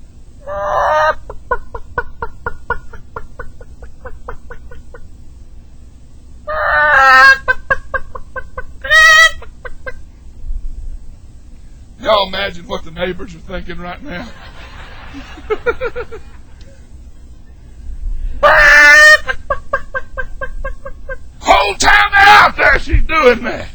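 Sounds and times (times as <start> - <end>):
voice imitating a mother hen clucking in a barnyard: 0.5 - 5.0, 6.5 - 10.0
laughter: 0.8 - 5.2, 6.7 - 10.0, 12.0 - 17.6, 18.4 - 23.7
speech: 12.5 - 16.3, 23.2 - 23.7.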